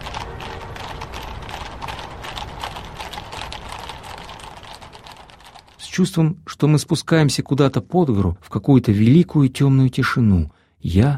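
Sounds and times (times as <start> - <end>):
horses pulling a sleigh hooves clopping: 0.0 - 7.0
speech: 6.0 - 11.1.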